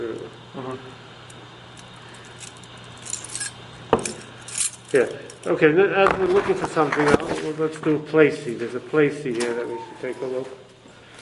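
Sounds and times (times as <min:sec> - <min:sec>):
speech: 0:00.0 - 0:01.1, 0:04.9 - 0:10.6
steady low hum: 0:00.0 - 0:11.2
keys jingling as they are handed over: 0:02.0 - 0:05.6.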